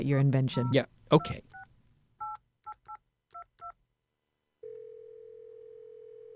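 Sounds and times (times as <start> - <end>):
speech: 0.0 - 1.6
steady phone line tone: 4.6 - 6.3.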